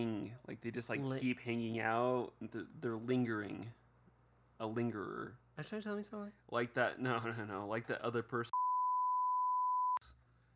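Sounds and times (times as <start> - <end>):
speech: 0.0 - 3.8, 4.6 - 8.6
censor bleep tone: 8.5 - 10.0.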